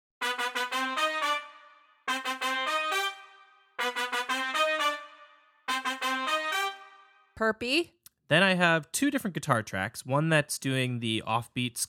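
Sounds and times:
ska horn section playing bright brass phrases: 0.2 - 7.4
speech: 7.4 - 11.8.

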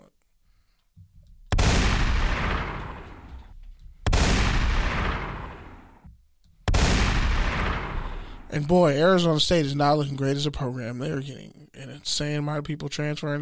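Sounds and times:
gunshot sound effects: 1.5 - 6.0, 6.7 - 8.7
speech: 8.5 - 13.4.

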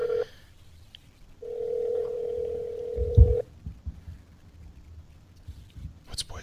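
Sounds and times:
telephone call ringback tone: 0.0 - 0.3, 1.4 - 3.4.

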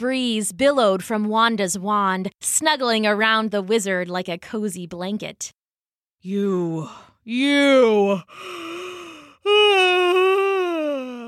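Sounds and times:
speech: 0.0 - 5.6, 6.2 - 8.9
person yawning with a long open-mouthed groan: 6.4 - 11.2
short softer breath: 8.3 - 9.4.

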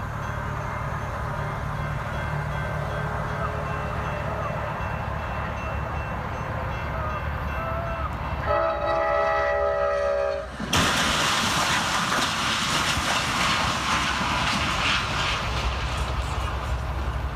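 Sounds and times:
train rumbling: 0.0 - 17.3
train horn blast: 7.6 - 10.5.

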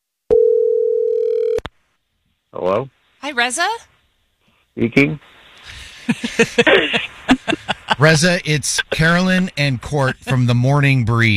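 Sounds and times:
telephone dial tone while placing call: 0.3 - 1.6
speech: 2.6 - 3.9, 4.8 - 5.3, 6.1 - 11.3
laughter: 5.7 - 10.7.

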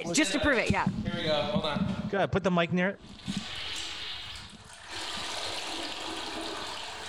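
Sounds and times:
speech: 0.1 - 3.5
toilet flushing: 3.0 - 7.0.

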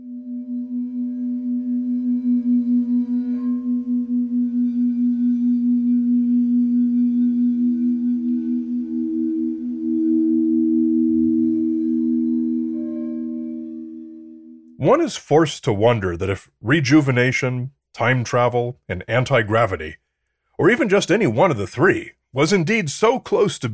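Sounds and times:
quartz singing bowls humming: 0.0 - 14.8
speech: 14.8 - 20.0, 20.6 - 23.7.

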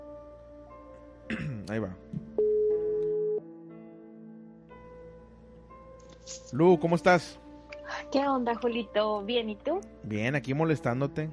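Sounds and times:
speech: 1.7 - 2.2, 6.3 - 7.4, 8.1 - 11.3
telephone ringback tone while dialing a call: 2.4 - 3.5.

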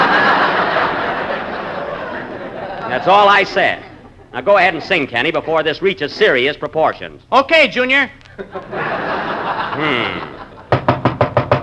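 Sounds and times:
audience laughter: 0.0 - 5.8, 8.4 - 10.8
speech: 3.0 - 10.4
loud sharp knocking on a door: 10.7 - 11.6.

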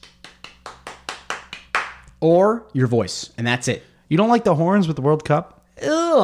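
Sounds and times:
crisp evenly spaced hand claps: 0.0 - 2.2
speech: 2.2 - 6.2.

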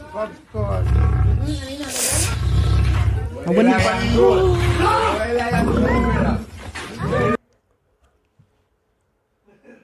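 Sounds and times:
speech: 0.1 - 2.5, 3.4 - 6.3
aggressive lion roaring behind a fence: 0.7 - 7.4.

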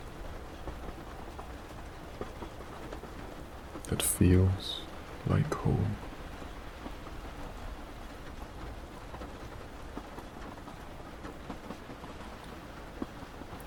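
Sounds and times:
steady rain falling: 0.0 - 13.6
speech: 3.9 - 6.1.

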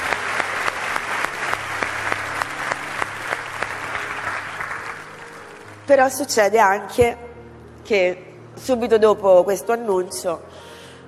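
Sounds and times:
audience applause: 0.0 - 5.9
speech: 5.9 - 7.2, 7.8 - 10.7.

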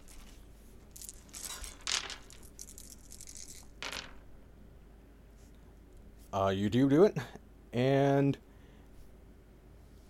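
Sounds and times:
dice rattling and clattering across a hard surface: 0.0 - 4.3
speech: 6.3 - 8.4.

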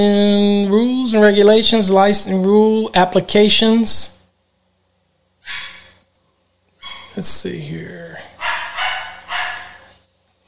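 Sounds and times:
speech: 0.0 - 4.1, 7.2 - 8.3
dog barking loudly: 5.4 - 5.9, 8.4 - 9.9.

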